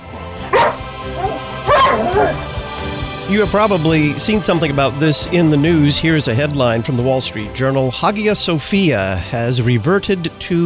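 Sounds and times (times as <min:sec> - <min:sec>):
dog barking: 0:00.5 - 0:02.4
speech: 0:02.2 - 0:02.5, 0:03.3 - 0:10.6.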